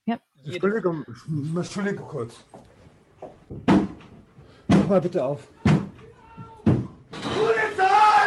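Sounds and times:
speech: 0.1 - 2.6, 4.9 - 5.6
police breaking down a door with loud bangs: 3.5 - 4.0, 5.6 - 7.7.

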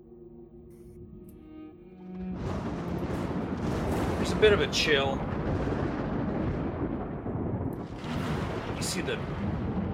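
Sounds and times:
thunder rumbling in the rain: 2.2 - 9.9
rain: 2.4 - 9.9
speech: 4.3 - 5.3, 9.0 - 9.4.

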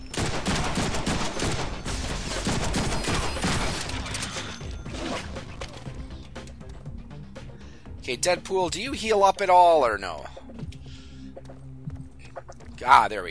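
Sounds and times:
video game gunfire from a character's guns: 0.0 - 5.2
speech: 8.1 - 10.4, 12.8 - 13.2.

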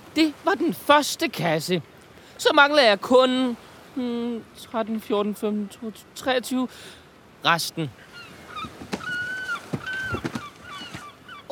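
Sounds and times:
speech: 0.2 - 8.8
seagulls calling: 6.8 - 11.5
sharp knocks and splashy clatters: 8.6 - 11.0.

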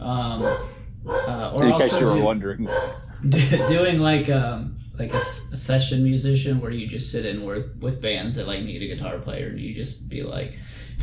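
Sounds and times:
dog barking with a whiny tone: 0.4 - 1.4, 2.0 - 3.0, 3.6 - 3.9, 5.1 - 5.4
speech: 1.6 - 11.0.

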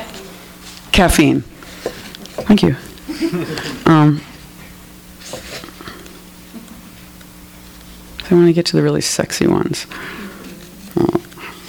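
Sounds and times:
speech: 1.0 - 1.5, 2.5 - 4.3, 8.3 - 10.2
audience member growling: 10.2 - 11.6.

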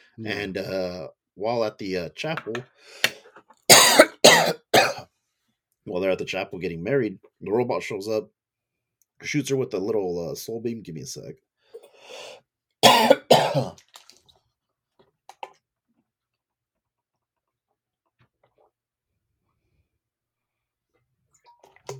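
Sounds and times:
speech: 0.2 - 3.2, 5.8 - 8.4, 9.2 - 11.4, 13.0 - 13.9
person coughing to bring up phlegm: 3.7 - 5.0, 12.8 - 13.8.

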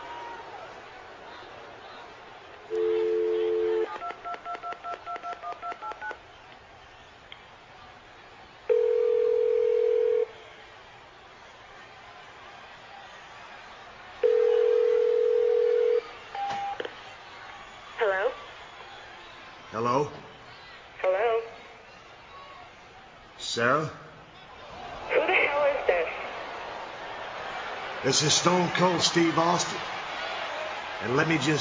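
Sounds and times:
faint noise: 0.0 - 31.5
telephone dial tone: 2.7 - 5.5, 8.7 - 10.3, 14.2 - 16.0
speech: 19.8 - 20.2, 23.6 - 24.0, 28.0 - 29.9, 31.0 - 31.5.

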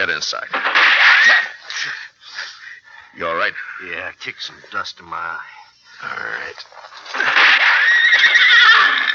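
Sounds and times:
speech: 0.0 - 2.1, 3.2 - 7.6
wounded horse neighing: 7.1 - 9.1.

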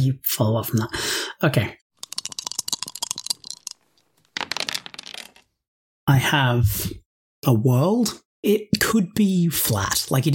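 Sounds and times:
speech: 0.0 - 1.8, 6.1 - 10.3
dice rattling and clattering across a hard surface: 2.0 - 5.5.

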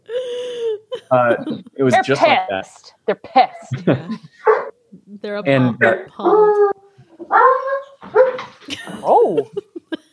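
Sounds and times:
laughter: 0.5 - 2.2, 3.6 - 4.4, 8.6 - 10.1
speech: 1.1 - 9.8
dogs yipping: 4.4 - 4.8, 5.9 - 8.7
dogs whining and howling: 5.8 - 8.5.

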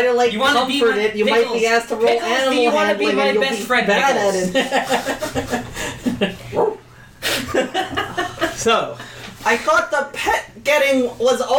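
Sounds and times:
speech: 0.0 - 6.7, 8.6 - 11.5
laughter: 4.2 - 6.6, 7.2 - 9.3
dog barking and yipping: 6.5 - 6.8.

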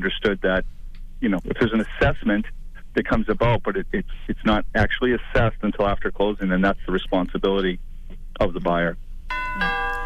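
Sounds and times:
speech: 0.0 - 9.8
two-tone doorbell chime: 9.3 - 10.0.

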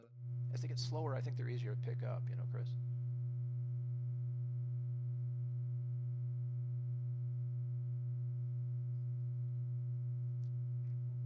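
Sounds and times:
speech: 0.0 - 3.0
low-pitched electronic alpha binaural beat tone: 0.0 - 11.2.

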